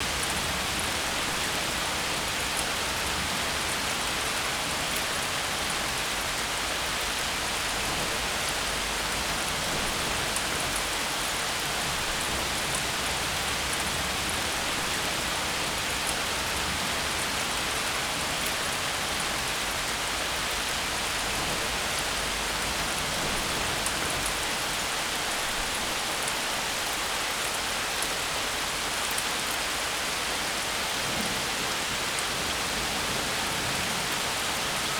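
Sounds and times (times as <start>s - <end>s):
rain: 0.0s - 34.9s.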